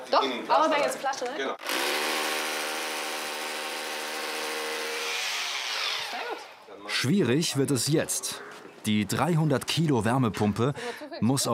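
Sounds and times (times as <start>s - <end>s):
speech: 0.1s - 2.0s, 6.8s - 11.5s
power drill whining at high speed: 1.6s - 6.6s.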